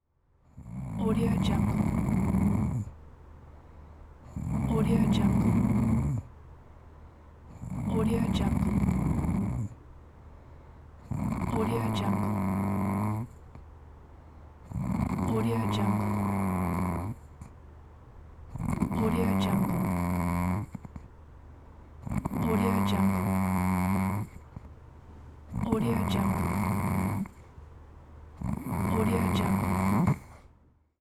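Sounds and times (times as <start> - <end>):
sleeping woman snoring: 0.6 - 3.0, 4.3 - 6.3, 7.5 - 9.8, 11.0 - 13.4, 14.7 - 17.3, 18.6 - 21.0, 22.0 - 24.5, 25.5 - 27.4, 28.4 - 30.4.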